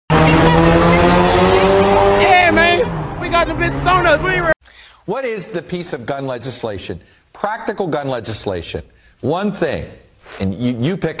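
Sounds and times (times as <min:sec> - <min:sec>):
car engine roaring: 0:00.1 - 0:04.6
speech: 0:03.4 - 0:11.1.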